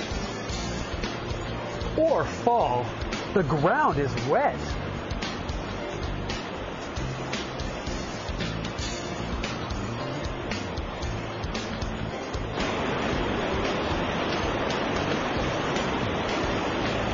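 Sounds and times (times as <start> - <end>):
river water rushing over rocks: 0.0 - 17.1
speech: 2.0 - 4.8.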